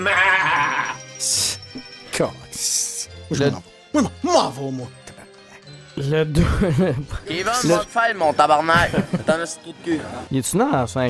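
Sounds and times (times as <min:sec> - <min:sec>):
speech: 0:00.0 - 0:00.3, 0:02.2 - 0:02.7, 0:03.3 - 0:05.0, 0:06.0 - 0:11.0
sheep bleating: 0:00.0 - 0:01.0
laughter: 0:06.3 - 0:07.9, 0:08.7 - 0:09.6.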